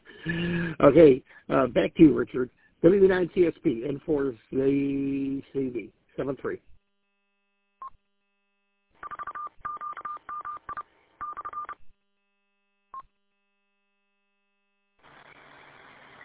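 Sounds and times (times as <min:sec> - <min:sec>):
speech: 0:00.2 - 0:06.7
touch-tone beeps: 0:09.0 - 0:11.8
hissing static: 0:15.0 - 0:16.2.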